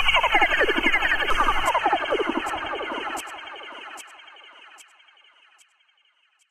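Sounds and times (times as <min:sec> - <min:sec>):
laser sound: 0:00.2 - 0:04.0.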